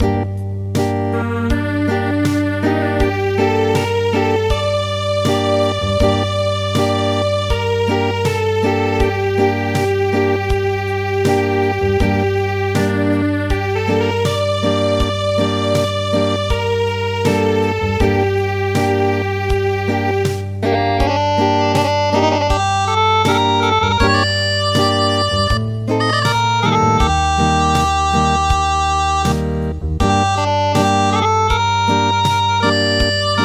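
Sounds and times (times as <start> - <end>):
acoustic traditional music: 0.0 - 33.4.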